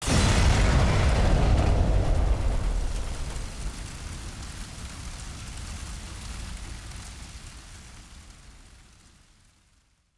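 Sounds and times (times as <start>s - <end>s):
large explosion: 0.0s - 5.2s.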